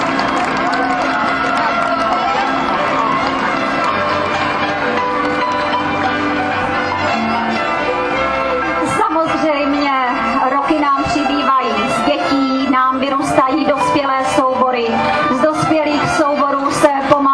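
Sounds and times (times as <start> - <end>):
loud steady applause from a large audience: 0.0 - 6.2, 11.0 - 13.6
crowd noise: 0.0 - 17.3.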